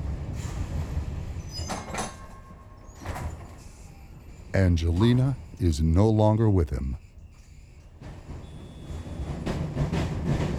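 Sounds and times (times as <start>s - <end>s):
train rumbling while slowing: 0.0s - 10.5s
speech: 4.6s - 7.0s.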